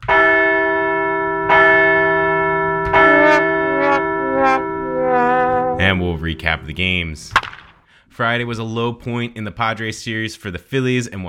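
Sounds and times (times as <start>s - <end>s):
large bell ringing: 0.0s - 7.4s
speech: 6.0s - 7.5s, 8.2s - 11.2s.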